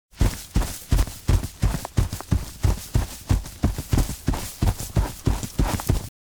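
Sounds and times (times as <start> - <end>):
running footsteps: 0.1 - 6.1.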